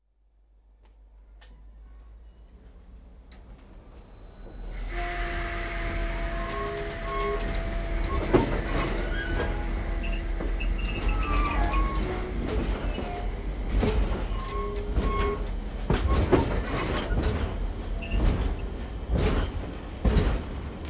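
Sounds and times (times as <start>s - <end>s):
steamship chuffing mock-up: 2.7s - 20.8s.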